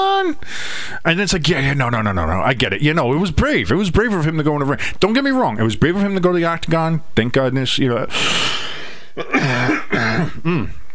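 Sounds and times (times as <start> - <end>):
speech: 0.3 - 10.8
voiced throat-clearing coughs: 9.2 - 10.8.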